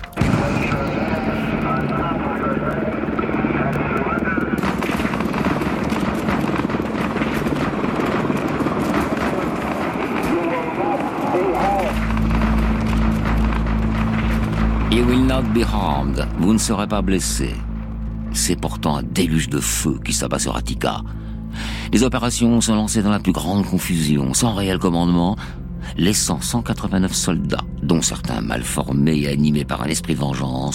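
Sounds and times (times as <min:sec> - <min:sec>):
commotion: 0:00.0 - 0:16.6
National Guard helicopter rotor roaring overhead releasing tear gas: 0:00.0 - 0:18.3
deeper rumble: 0:00.0 - 0:21.5
speech: 0:15.4 - 0:17.6, 0:18.4 - 0:30.7.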